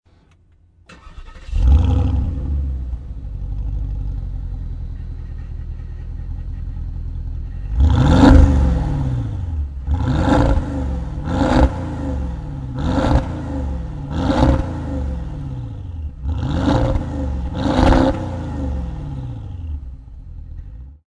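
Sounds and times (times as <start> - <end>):
turbo gas engine starting: 0.9 - 19.9.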